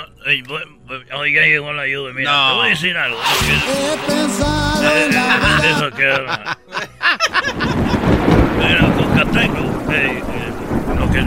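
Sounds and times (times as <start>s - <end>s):
speech: 0.3s - 6.6s, 11.1s - 11.2s
laughter: 4.9s - 8.2s
steady rain hissing: 7.7s - 11.2s
low rumbling thunder: 7.8s - 11.2s.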